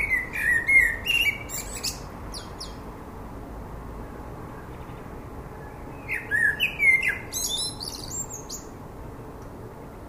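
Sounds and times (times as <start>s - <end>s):
common blackbird Turdus merula song: 0.0s - 2.9s, 4.0s - 8.8s.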